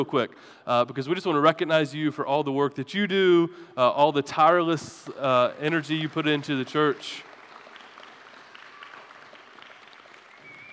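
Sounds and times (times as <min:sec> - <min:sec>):
speech: 0:00.0 - 0:07.3
audience clapping for church elders in a room: 0:05.0 - 0:10.7.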